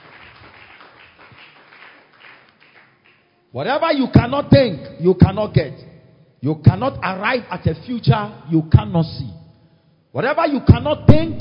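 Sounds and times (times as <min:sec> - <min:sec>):
church audience clapping: 0:00.0 - 0:03.4
speech: 0:03.5 - 0:09.4, 0:10.1 - 0:11.4.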